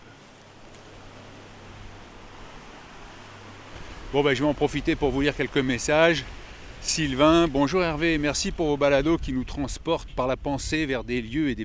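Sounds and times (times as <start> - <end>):
water rushing out through a canal lock as sluice gates open: 0.9 - 9.3
speech: 4.1 - 11.6.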